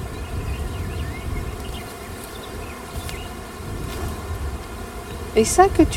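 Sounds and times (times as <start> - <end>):
higher whines of individual honeybees passing by: 0.0 - 5.9
swarm of agitated honeybees buzzing: 0.0 - 5.9
speech: 5.4 - 5.9.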